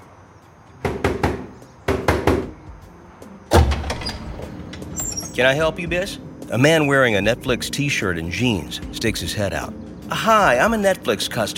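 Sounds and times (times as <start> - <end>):
woman knocking on the steel door of a DVD warehouse: 0.8 - 2.6
speech: 5.4 - 11.5.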